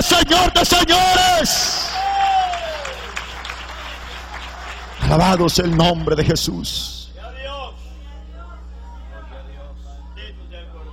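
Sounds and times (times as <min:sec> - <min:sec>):
church congregation applauding at a worship service: 0:01.0 - 0:06.5
speech: 0:05.1 - 0:07.0.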